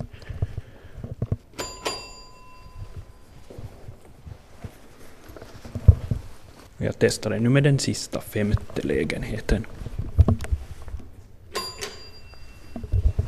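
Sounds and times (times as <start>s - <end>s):
speech: 0.0s - 0.2s, 6.8s - 9.8s
soft thuds and shuffling: 0.0s - 7.4s, 8.2s - 11.4s, 12.1s - 13.2s
apartment doorbell chimes: 1.6s - 3.6s, 11.5s - 13.2s.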